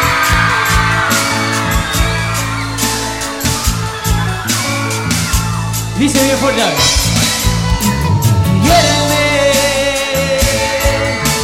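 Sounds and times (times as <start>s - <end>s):
sharp whoops from the concert audience: 0.0s - 6.9s
girls in the audience screaming at a live concert: 0.0s - 8.6s
loud band music at a live concert: 0.0s - 11.4s
speech: 6.0s - 7.0s.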